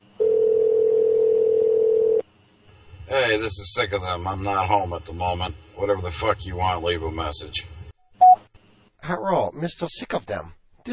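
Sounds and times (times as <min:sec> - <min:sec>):
telephone tone as a call is placed: 0:00.2 - 0:02.2
speech: 0:03.2 - 0:07.8, 0:09.1 - 0:10.9.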